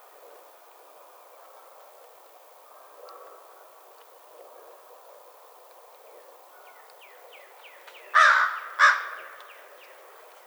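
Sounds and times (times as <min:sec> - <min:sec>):
American crow giving harsh broad caws: 0:08.2 - 0:09.4.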